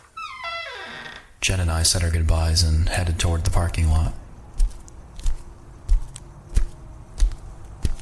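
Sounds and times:
speech: 1.5s - 4.2s
footsteps walking at a steady unhurried pace: 4.4s - 8.0s.

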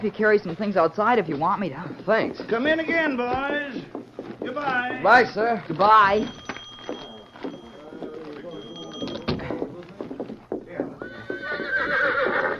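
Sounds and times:
speech: 0.0s - 6.4s
horse hooves clip-clopping: 0.0s - 12.5s
horse whinnying: 11.0s - 12.5s.

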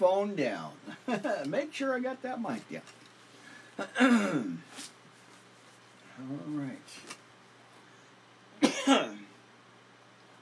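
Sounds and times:
speech: 0.0s - 3.0s, 3.8s - 5.0s, 6.2s - 7.2s
sharp throaty cough: 3.8s - 4.6s, 8.6s - 9.3s.

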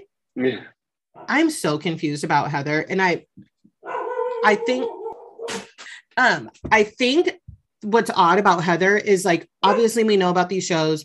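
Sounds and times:
speech: 0.4s - 3.5s, 4.4s - 5.6s, 6.2s - 11.0s
dog giving short breathy yelps: 3.8s - 5.6s.

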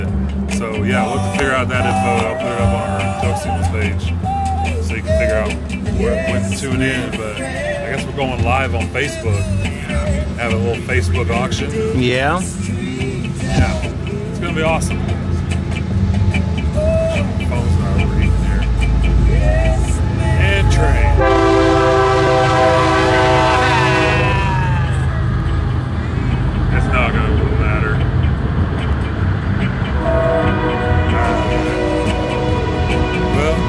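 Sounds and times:
train rumbling past: 0.0s - 33.6s
speech: 0.6s - 4.3s, 4.9s - 12.7s, 14.6s - 15.2s
train horn blaring: 16.4s - 25.8s, 29.5s - 33.6s.

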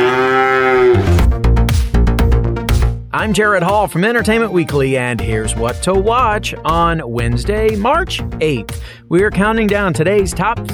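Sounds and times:
cow mooing: 0.0s - 1.2s
punchy rhythmic music with percussive hits: 1.1s - 10.7s
speech: 3.2s - 10.7s.

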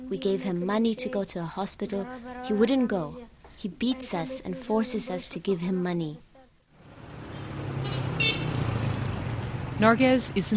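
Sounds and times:
speech: 0.1s - 6.3s, 9.8s - 10.5s
city street traffic with engines idling and passing: 6.7s - 10.5s
short sharp car horn toot: 7.8s - 8.6s.

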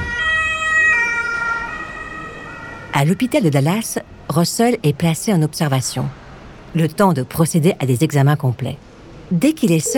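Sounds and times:
ambulance siren wailing: 0.0s - 3.3s
speech: 3.0s - 9.9s.

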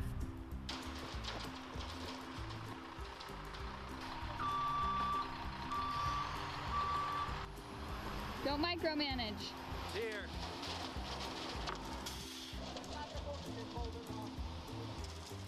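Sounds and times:
concrete truck engine rumbling: 0.0s - 15.4s
concrete truck reversing beeps: 4.4s - 7.4s
speech: 8.5s - 10.5s.

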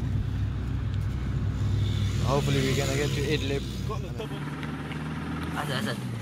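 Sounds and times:
overloaded car engine rumbling while driving slowly, heard from inside: 0.0s - 6.1s
speech: 2.3s - 4.6s, 5.6s - 6.1s.

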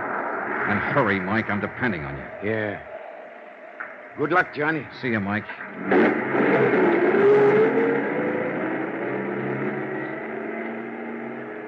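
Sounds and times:
speech: 0.7s - 2.9s, 4.2s - 7.3s
truck engine revving and pulling away: 5.8s - 11.6s.

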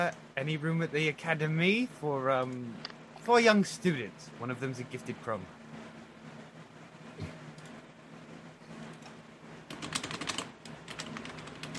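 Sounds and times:
speech: 0.0s - 5.6s
low steady hum: 0.0s - 11.7s
typewriter-like typing: 9.7s - 11.7s.

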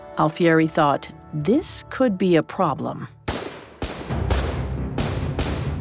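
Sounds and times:
speech: 0.2s - 3.2s
rifle gunshots: 3.3s - 5.7s.

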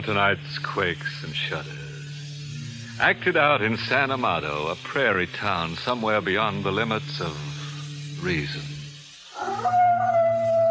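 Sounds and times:
speech: 0.0s - 1.9s, 3.0s - 7.5s, 8.2s - 8.7s
coyote howling at night: 9.4s - 10.6s.

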